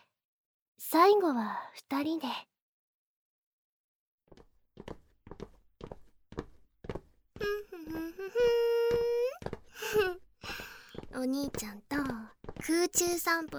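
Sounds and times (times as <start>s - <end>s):
speech: 0.8s - 2.5s, 7.4s - 13.5s
footsteps walking along a long corridor: 4.3s - 13.5s.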